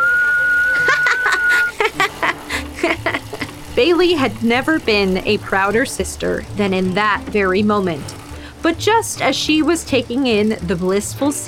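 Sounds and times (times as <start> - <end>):
whistling through gaps in teeth: 0.0 - 1.7
breathy cackling laughter: 0.7 - 3.7
speech: 3.8 - 11.4.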